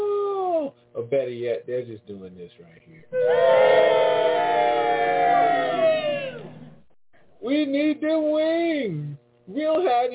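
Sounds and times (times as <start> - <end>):
speech: 1.1 - 4.8, 7.4 - 10.1
crowd of people screaming in distress: 3.1 - 6.8.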